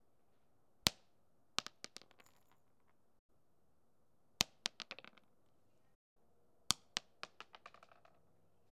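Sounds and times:
stones bouncing off the floor: 1.6 - 2.6, 4.4 - 5.3, 6.7 - 8.2.

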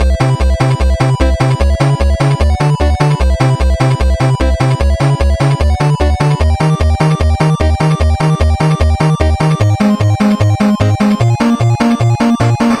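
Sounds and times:
8-bit game invincibility music loop: 0.0 - 12.7.

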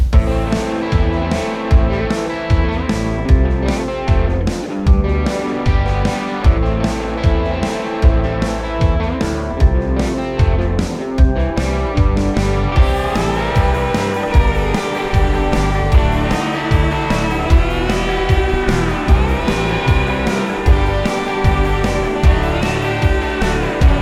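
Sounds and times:
loopable country style music: 0.1 - 24.0.

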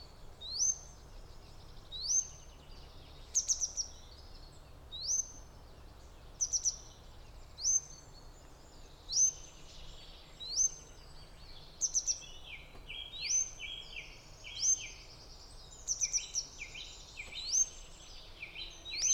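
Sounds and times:
grey wagtail sharp high metallic call notes: 0.0 - 19.1.

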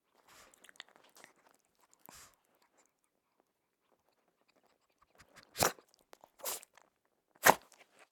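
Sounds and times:
small dog sneezing: 5.5 - 5.8, 6.4 - 6.6, 7.4 - 7.7.

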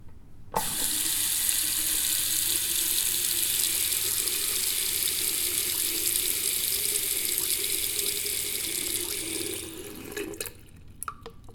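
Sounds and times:
bathroom tap: 0.6 - 10.8.

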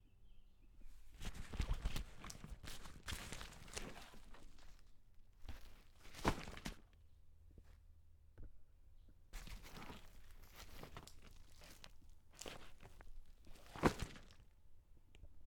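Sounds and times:
bag dropping: 1.2 - 6.9, 9.4 - 14.5.

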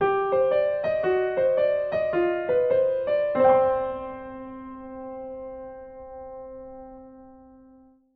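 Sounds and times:
piano jingle: 0.0 - 7.9.

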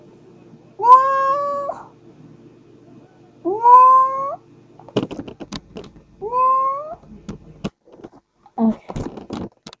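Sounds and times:
domestic pet cat meowing: 0.8 - 1.8, 3.5 - 4.4, 6.2 - 7.0.

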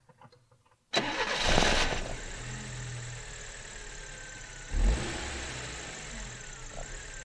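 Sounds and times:
car ignition: 1.0 - 7.2.

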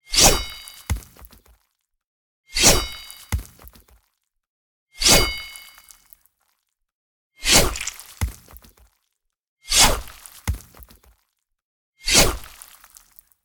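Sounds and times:
sword slashing hit in a beheading: 0.1 - 1.2, 2.6 - 3.6, 5.0 - 5.6, 7.4 - 8.5, 9.7 - 10.1, 12.1 - 12.6.

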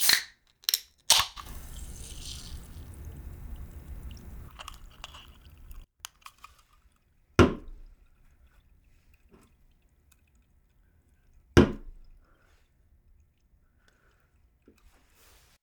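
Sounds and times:
soda can popping open: 0.0 - 5.8.

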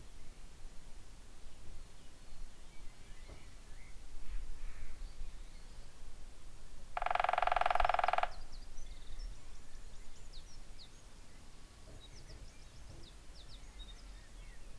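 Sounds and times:
woodpecker drumming: 7.0 - 8.5.

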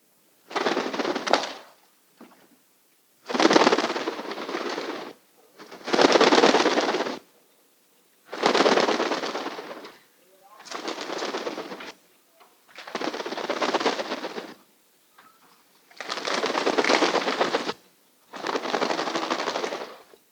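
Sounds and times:
medium-sized bird wings flapping quickly: 0.5 - 2.4, 3.3 - 7.3, 8.3 - 10.0, 10.6 - 12.0, 12.6 - 14.6, 15.8 - 20.2.

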